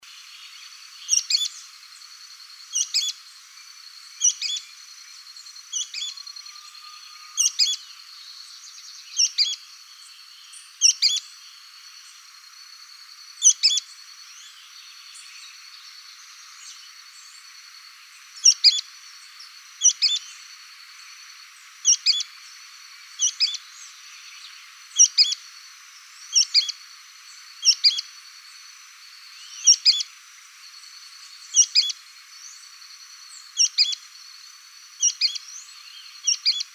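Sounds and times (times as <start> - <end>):
petrim bird singing: 0.0 - 36.7.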